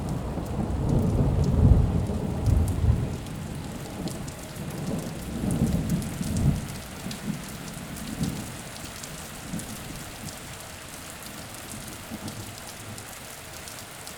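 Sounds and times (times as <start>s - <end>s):
deep thunder rumble: 0.0s - 8.5s
steady rain: 0.0s - 14.1s.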